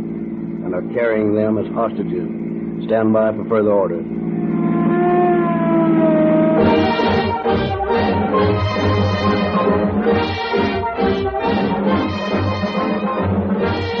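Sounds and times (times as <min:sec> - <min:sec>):
speech: 0:00.7 - 0:04.2
police car sirens wailing as cars chase escaped convicts: 0:04.3 - 0:13.9.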